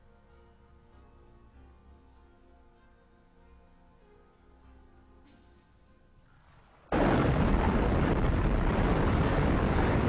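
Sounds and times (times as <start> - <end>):
loud sustained rumbling roar: 6.9 - 10.0
massive explosion sound effect depicting the Big Bang: 6.9 - 10.0.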